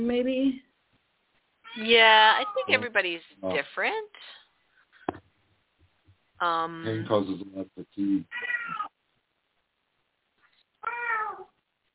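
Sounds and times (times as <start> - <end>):
speech: 0.0 - 0.7, 1.8 - 4.4, 6.4 - 8.6
cat meowing: 1.6 - 2.8, 8.3 - 9.0, 10.8 - 11.6.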